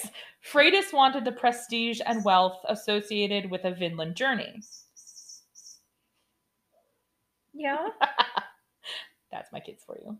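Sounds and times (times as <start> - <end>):
speech: 0.0 - 4.8, 7.6 - 10.1
pet chirping: 2.1 - 2.4, 4.6 - 5.9.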